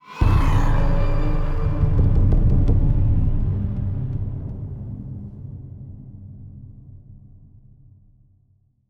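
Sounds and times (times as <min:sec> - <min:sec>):
death stinger: 0:00.1 - 0:04.6.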